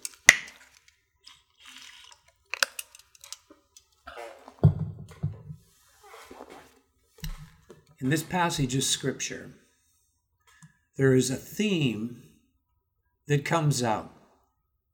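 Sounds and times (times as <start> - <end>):
person sipping water: 1.2 - 2.4
soft low gulp: 4.0 - 4.6
speech: 8.0 - 9.6, 11.0 - 12.3, 13.3 - 14.2.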